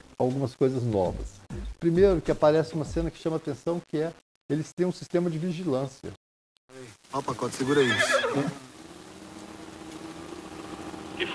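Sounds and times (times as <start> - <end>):
speech: 0.2 - 6.2, 6.9 - 8.7
two approaching motorcycle engines droning: 7.2 - 11.3.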